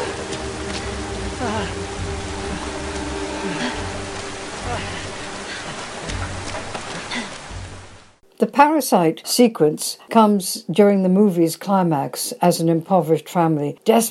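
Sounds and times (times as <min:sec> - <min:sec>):
torrential heavy rain downpour: 0:00.0 - 0:08.2
speech: 0:08.6 - 0:14.0.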